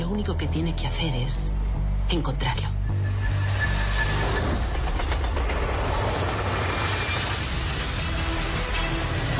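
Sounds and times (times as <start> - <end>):
speech: 0.1 - 2.7
train rumbling on rails: 2.9 - 9.3.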